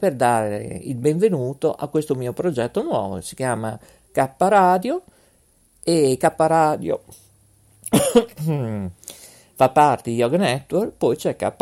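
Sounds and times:
speech: 0:00.0 - 0:05.2, 0:05.8 - 0:07.2, 0:07.9 - 0:11.6
man coughing: 0:07.9 - 0:08.9
man groaning: 0:08.3 - 0:08.9.

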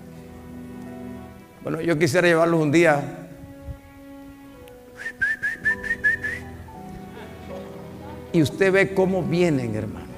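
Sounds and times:
speech: 0:01.6 - 0:03.2, 0:08.4 - 0:10.0
person whistling to call sheep: 0:05.0 - 0:06.5.

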